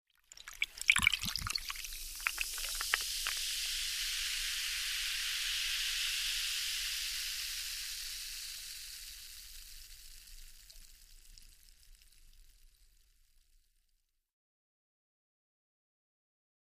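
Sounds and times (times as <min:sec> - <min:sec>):
soda pouring into a glass: 0:00.2 - 0:13.4.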